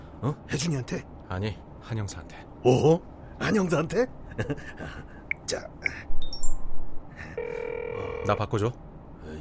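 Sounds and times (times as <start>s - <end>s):
speech: 0.2s - 6.1s, 8.2s - 9.3s
laughter: 4.3s - 5.1s
phone ringing tone on speakerphone: 7.4s - 8.6s.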